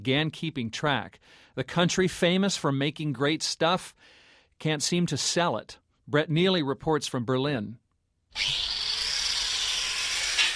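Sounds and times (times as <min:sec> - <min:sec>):
speech: 0:00.0 - 0:07.8, 0:08.4 - 0:08.8
hand drill drilling parts for an electric motor in Berlin: 0:08.3 - 0:10.5.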